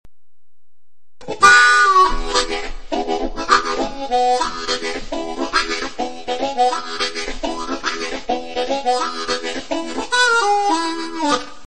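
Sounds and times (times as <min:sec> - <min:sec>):
harmonica chords: 0:01.2 - 0:11.6.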